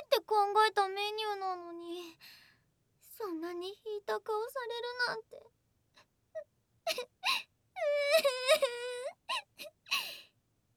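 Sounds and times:
speech: 0.3s - 2.4s, 3.2s - 5.6s, 6.4s - 9.0s
woman fake crying with whimpers, sobbing gasps and wavering wail: 6.9s - 10.2s.

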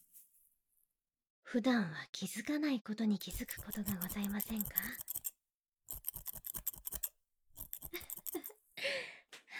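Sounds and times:
speech: 1.5s - 5.3s
thinning shears snipping through hair: 3.2s - 5.3s, 5.9s - 8.5s.

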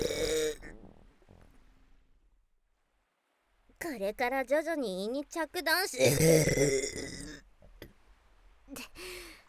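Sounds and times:
loud burp after drinking carbonated water: 0.0s - 0.9s, 6.0s - 7.4s
woman speaking softly: 3.8s - 6.1s
speech: 3.8s - 7.1s.

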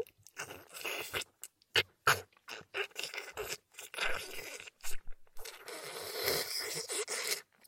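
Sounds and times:
food being bitten and chewed: 0.0s - 7.5s.

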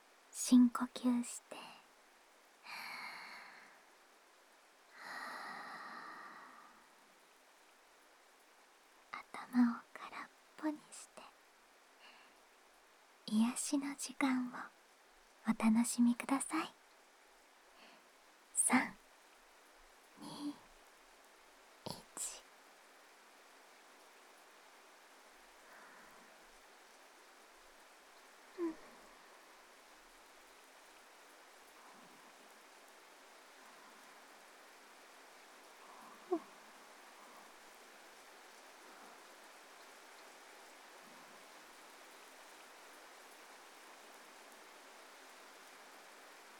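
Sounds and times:
rain falling in a passing shower: 0.0s - 46.5s
speech: 0.5s - 1.6s, 13.7s - 14.8s, 15.5s - 16.8s.

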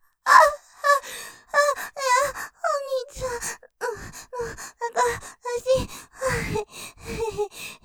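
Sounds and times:
rough heavy breathing in stereo ASMR: 1.0s - 2.6s, 3.2s - 7.8s.

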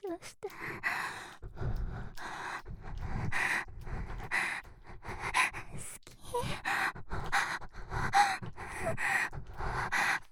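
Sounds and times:
erotic breathing and gasping: 0.0s - 10.3s.

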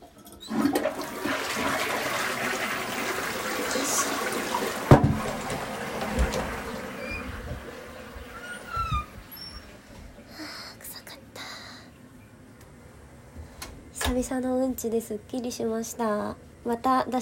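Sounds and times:
toilet flushing with rushing water: 0.0s - 10.3s
water gurgling and trickling as the tank drains: 0.2s - 10.3s
speech: 14.2s - 17.1s.

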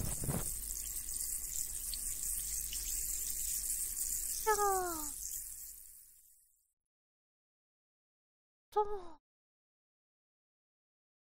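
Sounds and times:
bright fizzing hiss of bubbles: 0.0s - 6.6s
speech: 4.5s - 5.2s, 8.8s - 9.2s.

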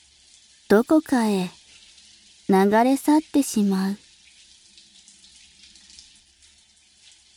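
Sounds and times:
speech: 0.7s - 1.6s, 2.5s - 4.0s
hot water running from a tap over a basin: 1.5s - 2.5s, 4.0s - 7.3s.

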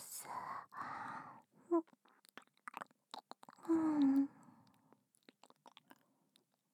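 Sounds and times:
chewing an apple: 1.9s - 4.1s, 5.2s - 6.5s.

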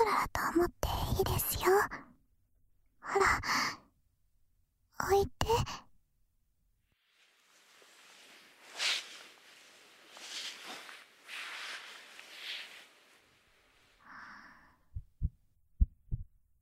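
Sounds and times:
speech: 0.1s - 2.1s, 3.0s - 3.8s, 5.0s - 5.8s
soft fabric rustling and shifting: 6.9s - 14.1s
low heartbeat heard against the chest: 14.8s - 16.5s.

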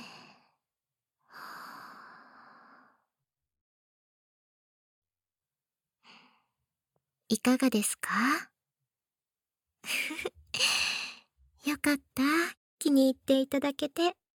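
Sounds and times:
soft airy breaths during a guided breathing exercise: 0.0s - 0.6s, 1.2s - 3.1s
speech: 7.3s - 8.5s, 11.6s - 14.2s.

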